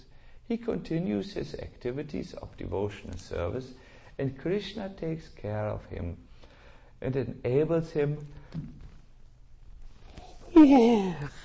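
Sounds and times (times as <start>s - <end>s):
speech: 0.5s - 6.3s, 7.0s - 8.8s, 10.5s - 11.4s
person yawning: 10.2s - 11.4s.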